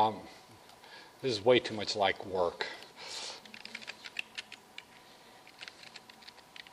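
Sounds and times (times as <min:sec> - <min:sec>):
speech: 0:00.0 - 0:00.4, 0:01.2 - 0:03.2
typing on a computer keyboard while searching the web: 0:03.4 - 0:04.9, 0:05.5 - 0:06.7.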